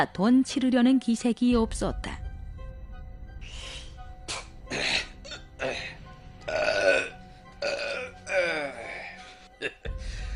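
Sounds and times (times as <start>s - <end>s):
speech: 0.0s - 2.2s
men belching after drinking: 4.3s - 9.9s.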